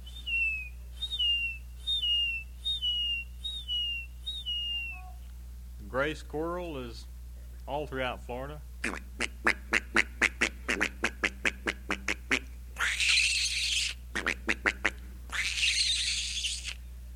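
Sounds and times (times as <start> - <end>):
low steady hum: 0.0 - 17.1
seagull calls: 0.2 - 5.1, 12.8 - 14.4, 15.3 - 16.8
speech: 5.9 - 7.1, 7.7 - 9.6
ducks quacking: 8.8 - 13.4, 14.2 - 16.0.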